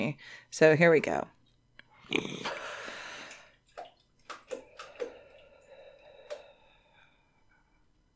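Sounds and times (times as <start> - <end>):
speech: 0.0 - 1.4, 2.1 - 2.6
slow drawn-out exhalation: 2.0 - 3.5, 4.6 - 7.7
quiet scattered clicks and small taps: 3.3 - 5.2.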